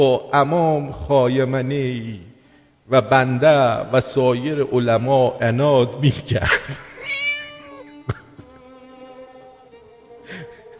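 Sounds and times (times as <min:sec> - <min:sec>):
speech: 0:00.0 - 0:02.3, 0:02.9 - 0:06.9
faint steady hum: 0:00.0 - 0:10.7
cat meowing: 0:07.0 - 0:08.0.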